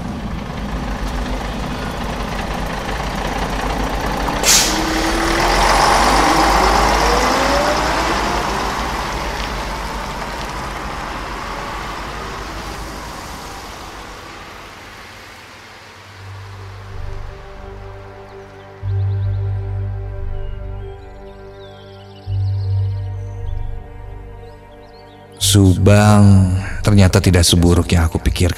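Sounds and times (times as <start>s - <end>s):
bus engine rumbling: 0.0s - 28.5s
short sharp hiss of bus air brakes: 4.4s - 5.1s
speech: 25.9s - 28.5s.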